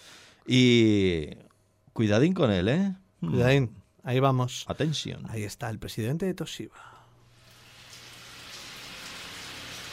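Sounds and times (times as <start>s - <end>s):
speech: 0.5s - 1.4s, 2.0s - 7.0s
rain falling: 7.5s - 9.9s.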